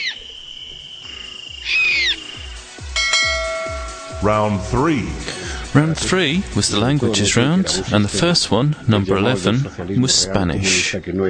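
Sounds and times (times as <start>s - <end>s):
common barn owl rasping screech: 0.0s - 2.9s
speech: 4.2s - 11.2s.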